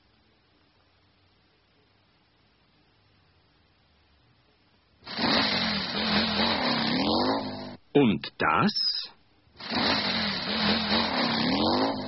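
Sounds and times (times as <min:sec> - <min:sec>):
motorcycle engine revving: 0:05.0 - 0:07.8, 0:09.6 - 0:12.0
speech: 0:07.9 - 0:10.1
person asking a question: 0:08.0 - 0:09.2.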